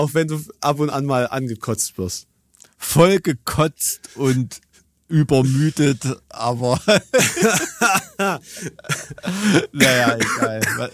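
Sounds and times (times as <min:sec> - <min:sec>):
speech: 0:00.0 - 0:10.9
laughter: 0:05.4 - 0:10.9
person coughing: 0:07.2 - 0:10.9.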